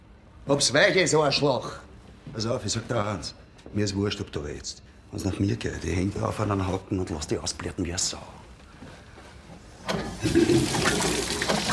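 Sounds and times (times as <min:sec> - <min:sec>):
speech: 0:00.5 - 0:08.4, 0:09.9 - 0:11.1
running water gushing and splashing: 0:10.2 - 0:11.7.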